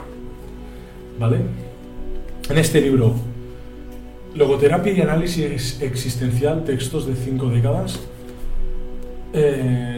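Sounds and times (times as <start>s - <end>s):
speech: 1.2s - 1.7s, 2.5s - 3.3s, 4.3s - 8.1s, 9.3s - 9.9s
books being pulled out and handled: 7.9s - 9.1s.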